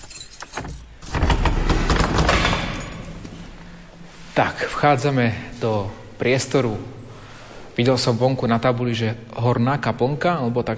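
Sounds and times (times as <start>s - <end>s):
keys jangling: 0.0s - 1.0s, 2.6s - 3.3s
heavy church door scraping and creaking open: 0.0s - 3.6s
speech: 4.4s - 7.0s, 7.8s - 10.7s.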